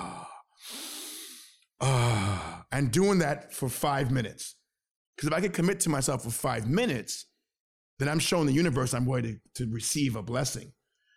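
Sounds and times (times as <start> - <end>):
person exhaling through the mouth during a breathing exercise: 0.4 - 1.6
speech: 2.7 - 4.6, 5.2 - 7.3, 8.0 - 10.8.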